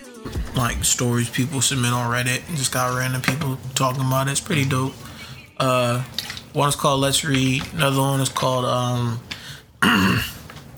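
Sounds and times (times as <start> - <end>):
speech: 0.6 - 10.3
throat clearing: 9.8 - 10.7.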